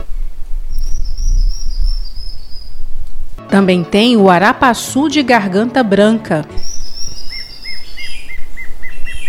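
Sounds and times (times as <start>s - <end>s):
low rumbling forest noise: 0.0s - 3.4s, 6.6s - 9.2s
formigueiro-assobiador antbird whistled song: 0.7s - 2.9s, 6.6s - 9.2s
speech: 3.5s - 6.6s.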